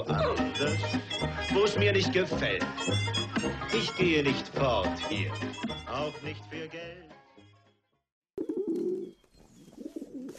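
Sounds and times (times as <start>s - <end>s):
speech: 0.0s - 7.1s
pigeon cooing: 8.4s - 10.3s.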